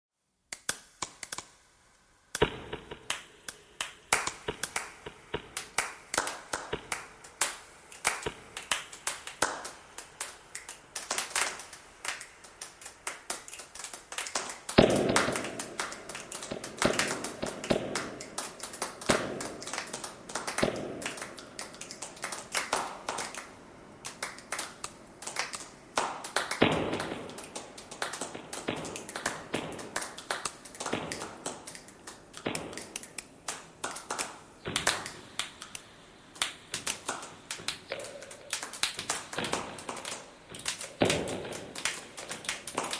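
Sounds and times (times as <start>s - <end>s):
clapping: 3.1s - 35.8s, 36.4s - 42.9s.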